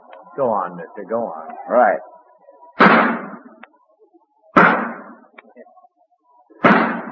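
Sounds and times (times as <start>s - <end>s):
speech: 0.4s - 2.2s
sharpshooter's gunshots fired at a target: 2.8s - 3.6s, 4.6s - 5.3s, 6.6s - 7.1s.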